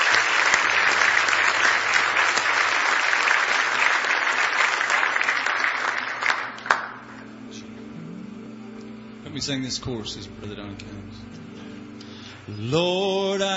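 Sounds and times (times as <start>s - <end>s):
large crowd applauding: 0.0s - 7.3s
speech: 9.4s - 11.6s, 12.5s - 13.5s.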